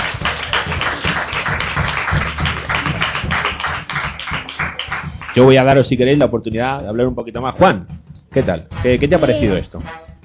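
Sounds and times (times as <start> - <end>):
crowd applauding for the presenters: 0.0 - 5.7
speech: 5.4 - 10.0.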